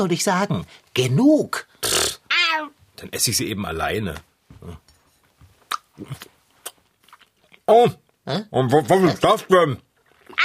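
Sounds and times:
speech: 0:00.0 - 0:04.9, 0:06.0 - 0:06.3, 0:07.7 - 0:09.9
wet mouth sounds: 0:01.8 - 0:02.2, 0:05.7 - 0:07.7
chewing and biting a rice paper roll: 0:05.7 - 0:07.7, 0:09.9 - 0:10.4.

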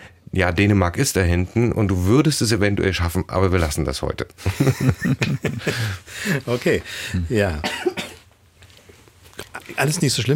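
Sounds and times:
speech: 0:00.3 - 0:08.0, 0:09.7 - 0:10.3
laughter: 0:04.4 - 0:06.5
person coughing: 0:07.6 - 0:08.2.

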